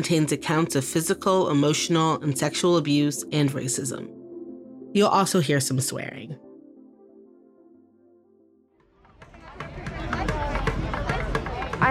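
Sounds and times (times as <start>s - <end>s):
speech: 0.0s - 4.2s, 4.9s - 6.5s
crowd babble outside a show venue in Houston, Texas: 9.0s - 11.8s
sharp claps or knocks: 9.0s - 11.8s.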